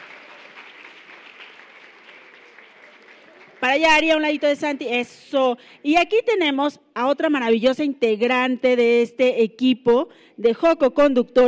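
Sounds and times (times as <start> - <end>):
audience applause for a young co-host at a children's radio program recording: 0.0 - 5.0
speech: 3.6 - 11.4.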